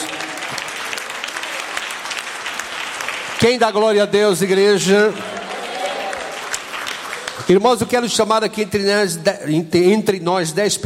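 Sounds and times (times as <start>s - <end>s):
church congregation clapping hands in praise: 0.0s - 8.2s
speech: 3.4s - 5.3s, 7.4s - 10.8s.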